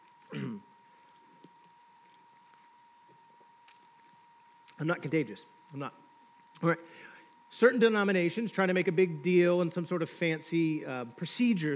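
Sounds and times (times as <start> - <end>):
throat clearing during a Bible teaching on saints: 0.3 - 0.7
speech: 4.8 - 6.0, 6.6 - 11.7.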